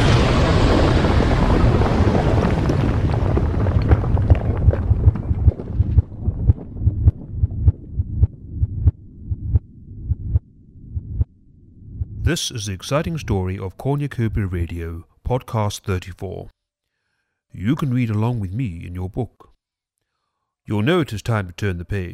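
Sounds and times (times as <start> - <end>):
thermonuclear missiles launching with roaring rumble: 0.0 - 4.2
rhythmic throbbing thumps: 4.7 - 11.3
speech: 12.3 - 16.6, 17.5 - 19.5, 20.7 - 22.1.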